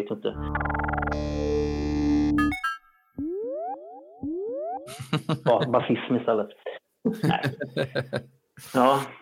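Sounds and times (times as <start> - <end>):
speech: 0.0 - 1.4, 5.1 - 9.1
vintage synthesizer thick buzzy sustained chord: 0.3 - 5.1
repeated rising synthesizer pitch-sweep blips with echo: 0.4 - 5.2
laughter: 4.9 - 5.8, 7.1 - 8.3.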